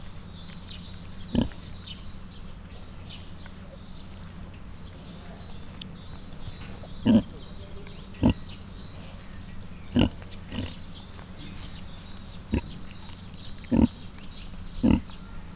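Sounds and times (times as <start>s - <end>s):
faint low hum: 0.0s - 15.5s
five suckling Mangalica piglets grunting in a zoo: 1.3s - 1.8s, 6.5s - 9.2s, 9.9s - 15.5s.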